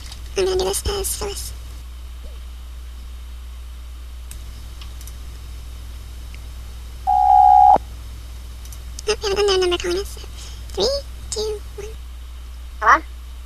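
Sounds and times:
speech: 0:00.4 - 0:01.6, 0:09.3 - 0:11.6, 0:12.8 - 0:13.1
electronic telephone tone announcing an incoming call: 0:07.1 - 0:07.8.

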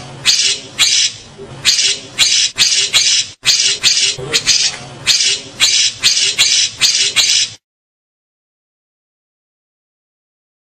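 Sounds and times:
grey-cheeked bulbul singing rasping buzzy bursts: 0:00.2 - 0:07.6.

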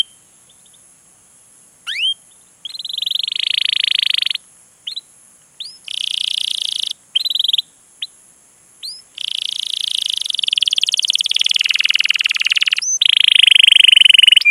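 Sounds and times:
canary singing buzzy trills: 0:01.8 - 0:08.2, 0:08.8 - 0:14.5.

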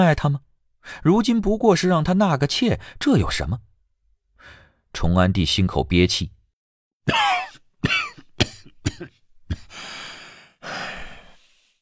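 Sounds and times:
speech: 0:00.0 - 0:03.7, 0:04.4 - 0:06.4, 0:07.1 - 0:08.0
raspy breathy exhales: 0:04.4 - 0:04.8, 0:09.6 - 0:11.8
dry coughing: 0:07.0 - 0:11.4.

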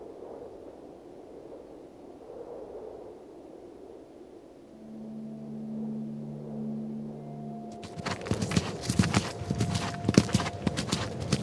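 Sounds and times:
low droning tone: 0:04.7 - 0:11.4
horse hooves clip-clopping as a rider travels through dark gorges: 0:07.7 - 0:11.4.

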